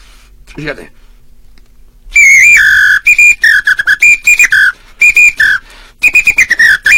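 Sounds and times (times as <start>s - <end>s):
speech: 0.6s - 1.1s
Brazilian batucada whistle blown in shrill bursts: 2.1s - 6.9s.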